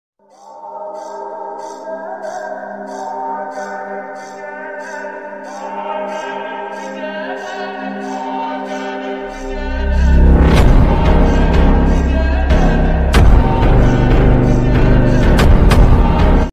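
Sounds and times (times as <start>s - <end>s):
very slow funk music with reverb: 5.7s - 16.5s.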